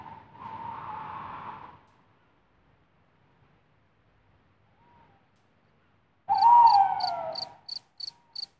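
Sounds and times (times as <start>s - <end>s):
tawny owl hooting at night: 6.3s - 7.8s.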